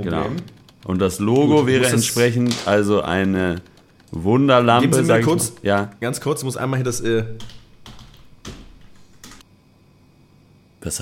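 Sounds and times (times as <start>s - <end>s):
speech: 0.0s - 7.6s, 10.8s - 11.0s
faint hum: 0.0s - 11.0s
typing on an IBM computer keyboard: 0.1s - 6.0s, 7.0s - 9.4s.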